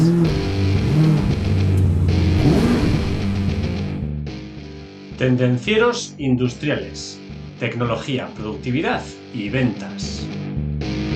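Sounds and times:
car engine roaring and revving up and down in pitch: 0.0 - 4.2
speech: 5.2 - 10.4.

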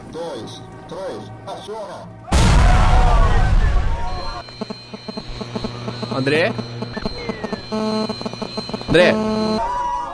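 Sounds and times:
speech: 0.1 - 7.0, 7.7 - 9.8
detonators blowing up a box in a square: 2.3 - 4.2.

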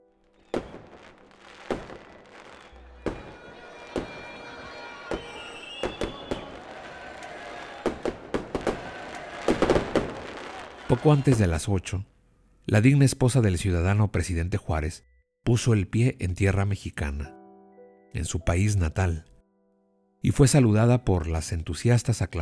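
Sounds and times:
fireworks rockets fired from small boats bursting: 0.3 - 11.7
speech: 10.9 - 12.1, 12.7 - 17.4, 18.1 - 19.3, 20.2 - 22.4.

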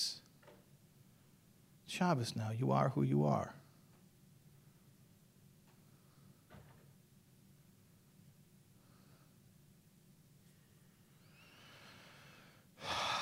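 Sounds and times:
speech: 1.9 - 3.6
slow deep breath drawn in: 11.3 - 13.2
sudden loud rushing exhale: 11.4 - 13.2.

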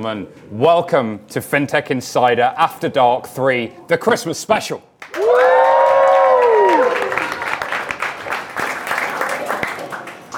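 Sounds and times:
speech: 0.0 - 5.5
live audience applauding at company offices in London: 5.0 - 10.3
live audience whooping and cheering: 5.1 - 8.1.

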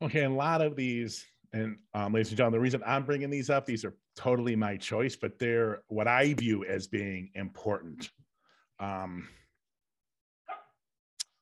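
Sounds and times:
speech: 0.0 - 8.2, 8.8 - 9.4
dog barking: 10.5 - 10.8.

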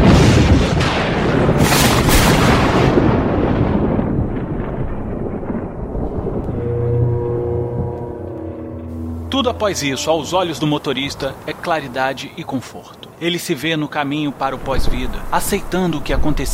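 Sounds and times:
thunder crash from a lightning strike: 0.0 - 9.7
faint sustained tone: 6.0 - 11.7
speech: 9.4 - 16.5.

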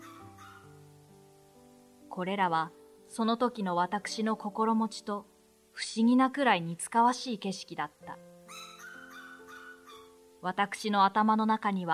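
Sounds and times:
caged puppy whining and yelping on a dim railway station platform: 0.0 - 0.8, 8.5 - 10.2
speech: 2.2 - 8.3, 10.4 - 11.9.

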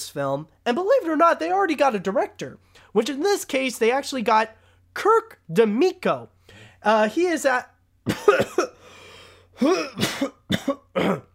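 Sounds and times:
speech: 0.1 - 8.8, 9.6 - 11.3
faint breath: 6.4 - 6.8, 8.8 - 9.6
person coughing in a harsh coughing fit: 8.0 - 11.3.

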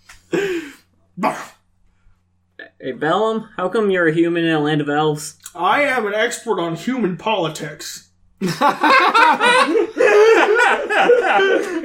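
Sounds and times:
voice imitating a cough for a duke character: 1.2 - 1.6
speech: 2.8 - 9.8, 10.9 - 11.8
laughter: 8.4 - 11.8.

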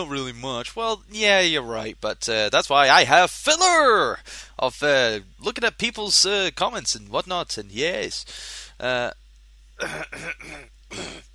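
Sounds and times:
speech: 0.0 - 9.2, 9.8 - 11.3
person coughing into the microphone: 9.8 - 11.3.

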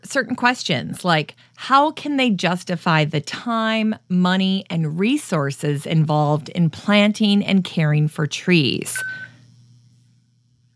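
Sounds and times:
speech: 0.1 - 9.2
electronic alarm beep: 8.9 - 9.3.

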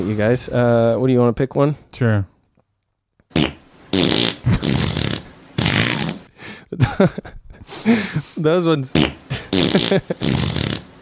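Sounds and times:
speech: 0.0 - 2.3, 6.7 - 10.7
loud rasping fart sound effects: 3.3 - 6.3, 9.0 - 10.9.

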